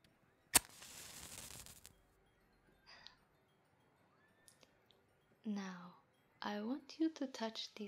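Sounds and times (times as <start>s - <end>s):
match strike lighting incense: 0.5s - 1.9s
speech: 5.5s - 7.8s.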